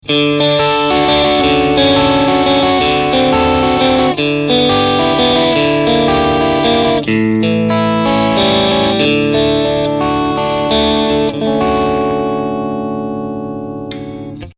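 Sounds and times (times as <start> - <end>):
overdriven electric guitar on the middle pickup: 0.0 - 14.5.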